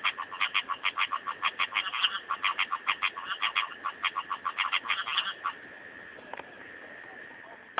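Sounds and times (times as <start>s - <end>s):
rocket frog Litoria nasuta call of clipped rasping pulses: 0.0s - 5.6s
soft background hiss: 0.0s - 7.7s.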